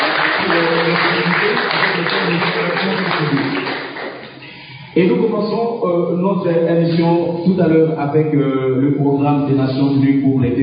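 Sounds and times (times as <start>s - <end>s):
audience cheering at a human rights event: 0.0s - 4.5s
audience applauding at a human rights event: 0.0s - 4.6s
speech: 5.0s - 10.6s.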